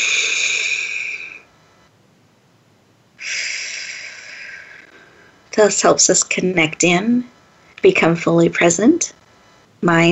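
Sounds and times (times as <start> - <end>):
deep breath in and out through the mouth: 0.0 - 1.5, 3.2 - 5.5
speech: 5.6 - 9.2, 9.8 - 10.1.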